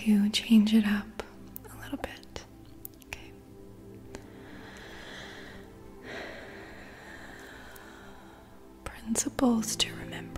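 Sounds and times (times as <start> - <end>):
speech: 0.0 - 1.1, 9.4 - 10.0
soft breath in through the nose during a breathing exercise: 4.2 - 8.6.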